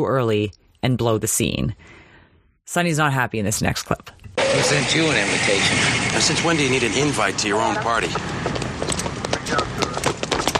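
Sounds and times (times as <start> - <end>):
speech: 0.0 - 2.0, 2.7 - 8.5
dense noise: 0.0 - 10.5
running footsteps: 5.0 - 10.5.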